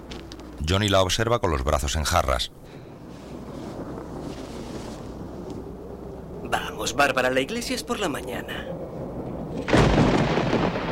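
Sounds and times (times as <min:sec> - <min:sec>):
speech: 0:00.7 - 0:02.8, 0:06.8 - 0:08.8
distant thunder of an approaching storm: 0:03.0 - 0:10.9.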